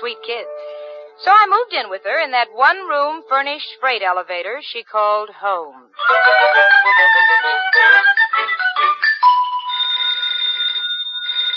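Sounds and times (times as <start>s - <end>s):
speech: 0.1s - 8.5s
loud electronic phone ringtone warbling: 6.0s - 11.5s.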